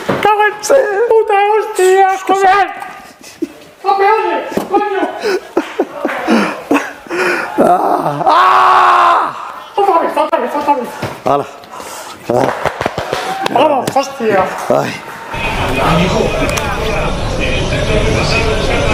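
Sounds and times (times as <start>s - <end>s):
speech: 0.5s - 2.9s, 3.8s - 11.6s, 12.3s - 12.7s, 13.5s - 18.4s
laughter: 2.9s - 3.8s, 4.5s - 8.3s
man sobbing and wailing while celebrating: 4.7s - 9.4s
man gasping breaths: 6.2s - 8.3s.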